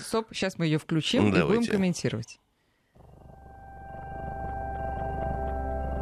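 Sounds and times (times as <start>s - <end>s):
speech: 0.1s - 2.5s
droning music with whale-like glides composed for cats: 3.4s - 6.0s.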